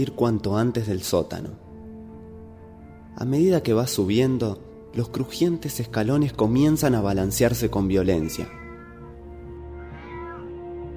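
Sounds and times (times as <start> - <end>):
speech: 0.0 - 1.7, 3.2 - 8.6
cat meowing: 8.0 - 10.7.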